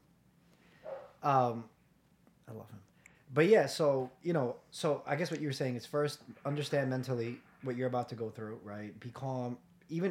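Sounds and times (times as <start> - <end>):
dog bark through a wall: 0.8 - 1.2
speech: 1.2 - 1.8, 2.5 - 10.0.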